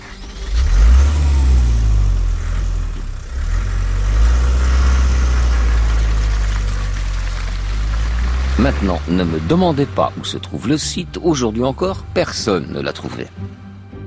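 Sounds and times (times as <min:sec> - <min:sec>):
car engine revving and driving away: 0:00.0 - 0:14.0
speech: 0:08.6 - 0:13.6.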